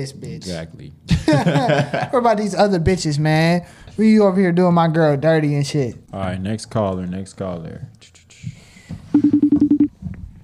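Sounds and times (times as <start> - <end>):
speech: 0.0 - 8.6
laughter: 1.1 - 2.2
telephone button-press tones on a call-in line: 9.2 - 9.9.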